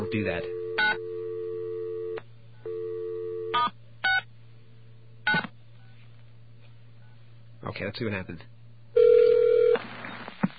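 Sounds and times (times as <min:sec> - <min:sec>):
steady telephone line tone: 0:00.0 - 0:04.2, 0:09.0 - 0:09.8
low constant hum: 0:00.0 - 0:10.5
speech: 0:00.2 - 0:00.6, 0:07.7 - 0:08.6.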